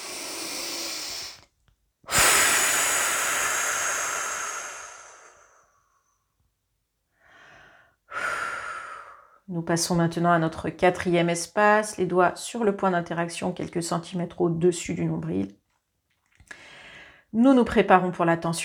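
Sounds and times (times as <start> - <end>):
slow breathing out during a guided relaxation exercise: 0.0 - 1.5, 2.1 - 6.2, 7.2 - 9.4, 16.5 - 17.2
speech: 9.5 - 15.6, 17.3 - 18.6.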